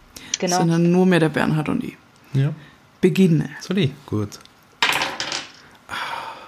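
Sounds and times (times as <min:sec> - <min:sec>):
speech: 0:00.4 - 0:04.5
dice clattering across a hard surface: 0:04.8 - 0:05.7.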